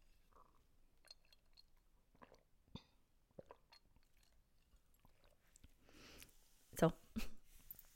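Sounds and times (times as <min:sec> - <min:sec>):
sipping tea: 0:00.0 - 0:06.3
airy slurp of tea: 0:00.2 - 0:05.6
person swallowing tea: 0:02.2 - 0:03.8.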